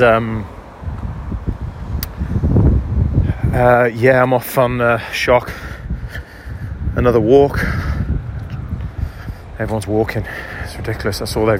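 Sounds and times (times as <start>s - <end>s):
speech: 0.0s - 0.6s, 3.6s - 5.7s, 7.0s - 7.9s, 9.6s - 11.5s
strong wind blowing outdoors on an overcast day: 0.0s - 11.5s.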